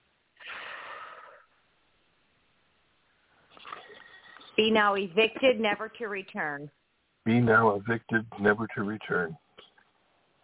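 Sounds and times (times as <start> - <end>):
deep breath drawn in during a slow spoken prayer: 0.4 - 1.6
speech: 4.6 - 9.4.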